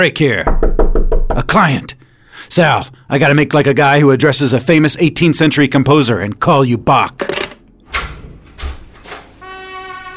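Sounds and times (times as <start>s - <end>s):
speech: 0.0s - 0.7s, 1.4s - 7.5s
door opening with rattling thumps: 7.2s - 9.4s.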